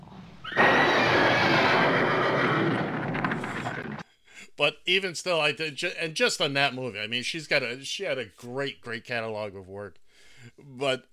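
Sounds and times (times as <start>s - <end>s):
horses neighing and whinnying: 0.4s - 4.0s
speech: 4.6s - 11.1s.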